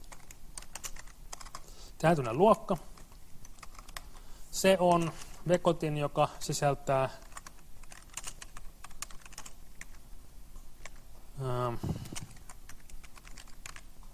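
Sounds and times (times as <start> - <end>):
typing Java-like pseudocode on a computer keyboard: 0.0 - 1.7, 2.7 - 4.2, 7.2 - 10.0, 10.8 - 11.0, 12.0 - 14.1
speech: 2.0 - 2.9, 4.6 - 7.2.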